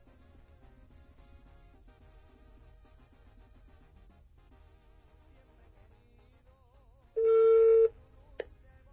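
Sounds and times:
steady electronic phone tone during redialing: 7.2 - 7.9.

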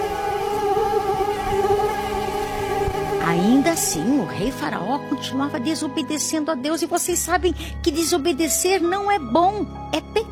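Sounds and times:
mosquitoes buzzing: 0.0 - 4.2
speech: 3.4 - 10.2.

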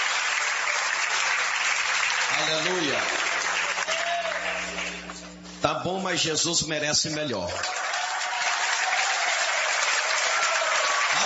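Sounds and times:
large crowd applause: 0.0 - 5.2, 7.4 - 11.2
speech: 2.4 - 3.2, 5.6 - 7.9.

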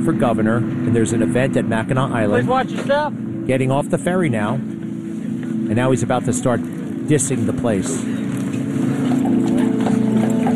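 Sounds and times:
speech: 0.0 - 4.8, 5.7 - 8.2
constant low hum: 0.0 - 10.5
general street bustle: 0.0 - 10.5
several horses' hooves clip-clopping on pavement: 7.8 - 10.5.

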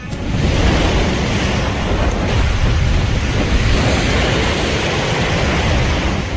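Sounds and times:
high waves pounding against a ship's bow: 0.0 - 6.3
strong ponente-maestral wind gusting: 0.0 - 6.3.

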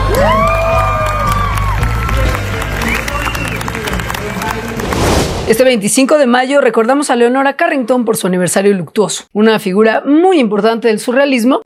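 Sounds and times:
stadium crowd whooping and shouting: 0.0 - 4.8
stadium crowd cheering for a football goal: 0.0 - 5.6
speech: 5.5 - 11.6.

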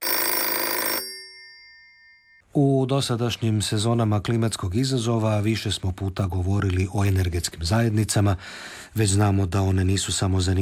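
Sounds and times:
telephone ringing on an outgoing call: 0.0 - 2.4
speech: 2.6 - 10.6.

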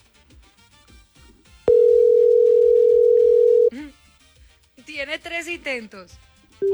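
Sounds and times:
telephone ringing tone while a call waits to be answered: 1.7 - 3.7
speech: 5.2 - 6.7.

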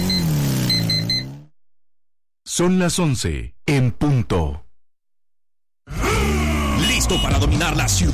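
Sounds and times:
CF Moto Dual 230 motorcycle engine revving: 0.0 - 1.6
speech: 2.5 - 4.6, 7.0 - 8.1.

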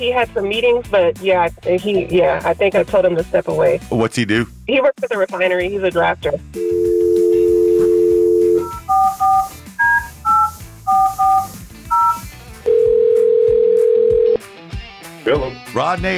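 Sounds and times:
speech: 0.0 - 6.8, 15.2 - 16.1
telephone keypad beeps as a number is punched in: 6.6 - 12.3
telephone dial tone: 6.6 - 14.4.

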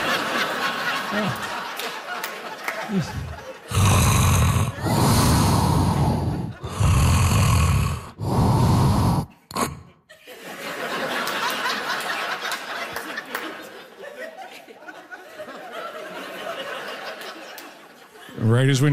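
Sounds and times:
laughter: 0.0 - 6.8, 9.6 - 18.4
sleeping person snoring loudly at night: 1.1 - 1.5, 2.9 - 10.0
speech: 1.1 - 1.5, 2.9 - 3.8, 18.6 - 18.9
quiet breathing: 2.9 - 10.0.

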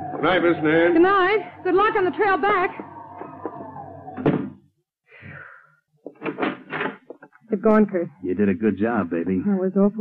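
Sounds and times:
speech: 0.2 - 3.0, 7.6 - 10.0
wooden door opening and shutting: 2.8 - 4.7, 6.1 - 7.3.

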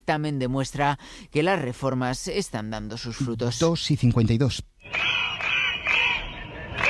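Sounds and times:
speech: 0.1 - 5.0
protesting teachers crowd din in Catalonia: 4.8 - 6.8
protesting teachers shouting in Catalonia: 4.8 - 6.8.

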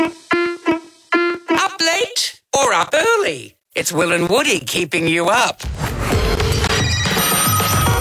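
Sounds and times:
phone alarm ringing: 0.0 - 1.8, 6.8 - 7.9
speech: 2.6 - 5.7.

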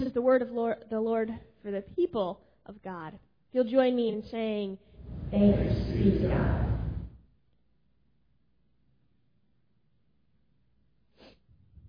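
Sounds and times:
speech: 0.0 - 6.7
noisy burst: 5.0 - 7.2
sharp breathy inhale of aborted sneeze: 11.1 - 11.6.

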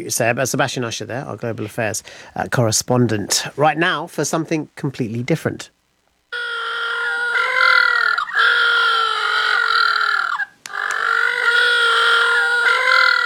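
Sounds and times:
speech: 0.0 - 5.8
little blue penguins calling in harsh braying honks: 6.4 - 13.2.

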